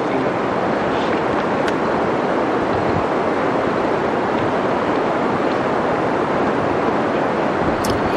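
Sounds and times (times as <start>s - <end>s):
dense rushing roar in old growth forest: 0.0s - 8.1s.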